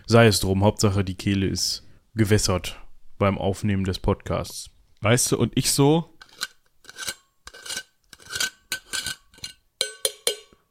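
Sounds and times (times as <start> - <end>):
speech: 0.1 - 6.1
metal water bottle being handled, clinking and scraping: 6.2 - 10.6.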